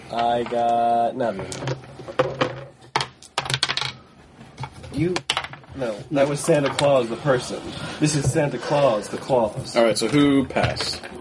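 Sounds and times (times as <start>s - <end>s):
speech: 0.1s - 2.5s, 5.0s - 11.2s
dice rolled during a game: 1.4s - 4.0s, 5.1s - 5.8s.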